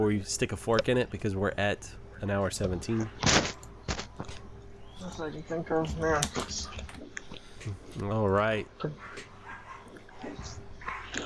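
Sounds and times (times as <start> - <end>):
speech: 0.0 - 3.6, 5.0 - 9.3
low steady hum: 0.0 - 11.2
dogs barking and yipping excitedly: 9.0 - 11.2.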